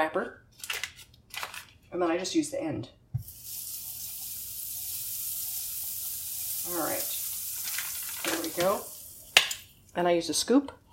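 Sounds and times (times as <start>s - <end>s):
speech: 0.0s - 0.7s, 1.9s - 3.0s, 6.7s - 7.2s, 8.5s - 8.9s, 10.0s - 10.8s
butter sizzling in a hot nonstick pan: 3.2s - 9.8s.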